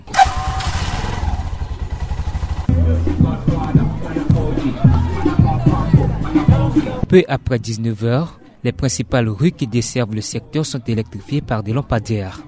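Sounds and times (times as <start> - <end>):
motorcycle taxi engine idling and revving: 0.0 - 6.8
faint murmur of voices: 2.7 - 12.4
speech: 7.1 - 12.4.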